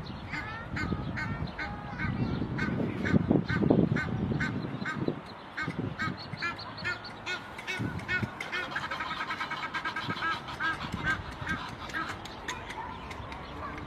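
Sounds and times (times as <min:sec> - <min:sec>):
low rumbling background noise: 0:00.0 - 0:13.8
Egyptian goose honking: 0:02.0 - 0:12.2.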